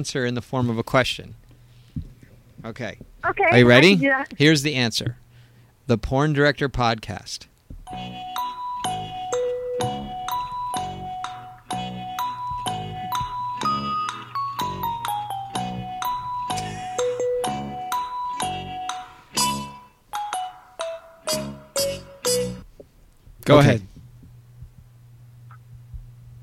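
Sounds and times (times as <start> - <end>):
speech: 0.0 - 1.4, 2.6 - 5.2, 5.9 - 8.2, 23.5 - 23.9
bouncy quiz-show style waiting tune with bell-like notes and bass: 7.9 - 22.8.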